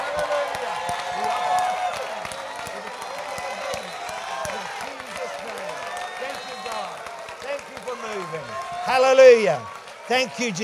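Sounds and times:
audience rhythmic clapping: 0:00.0 - 0:10.6
audience shouting and cheering: 0:00.0 - 0:10.6
speech: 0:00.2 - 0:00.4, 0:09.0 - 0:10.6.

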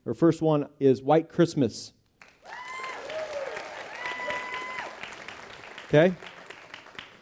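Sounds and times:
speech: 0:00.1 - 0:02.6, 0:05.9 - 0:06.3
audience clapping and cheering: 0:02.2 - 0:07.2
excited whoops: 0:02.4 - 0:05.2
whistle-like shout: 0:02.5 - 0:04.9.

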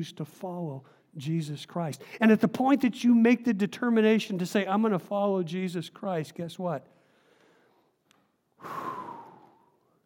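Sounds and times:
speech: 0:00.0 - 0:07.0
forceful exhaled breath: 0:08.6 - 0:09.7.

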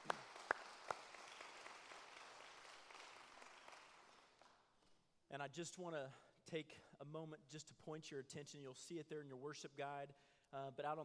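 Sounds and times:
audience applauding: 0:00.0 - 0:04.6
speech: 0:05.3 - 0:11.0.

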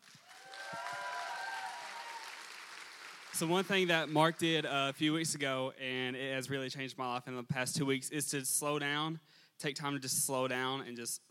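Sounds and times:
church audience applause: 0:00.0 - 0:04.4
faint whoops and cheers: 0:00.1 - 0:02.7
speech: 0:03.4 - 0:11.3.

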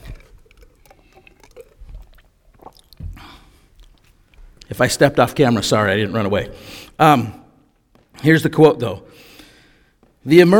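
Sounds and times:
person swallowing: 0:00.0 - 0:04.1
person sipping water: 0:00.0 - 0:04.7
soft wet mouth clicks: 0:00.0 - 0:04.7
speech: 0:04.7 - 0:07.4, 0:08.2 - 0:09.3, 0:10.2 - 0:10.5.

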